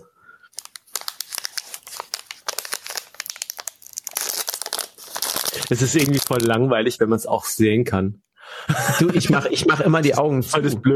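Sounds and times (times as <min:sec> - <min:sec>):
plastic protein bar wrapper crinkling while being opened: 0:00.5 - 0:06.6
speech: 0:05.7 - 0:08.3, 0:08.9 - 0:10.9
laughter: 0:08.6 - 0:09.9.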